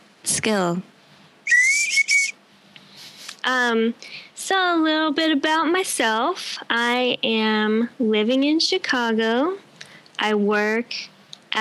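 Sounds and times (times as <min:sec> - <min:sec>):
speech: 0:00.4 - 0:01.0, 0:03.4 - 0:09.6, 0:10.2 - 0:11.5
whistling through teeth: 0:01.5 - 0:02.4.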